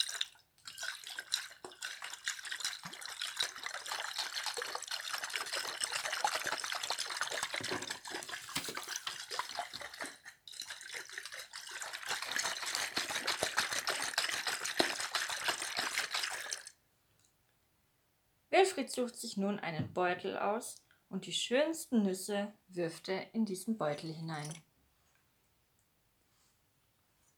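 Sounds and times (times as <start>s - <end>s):
water running from a tap over paws being washed: 0.1s - 16.6s
speech: 18.6s - 24.7s.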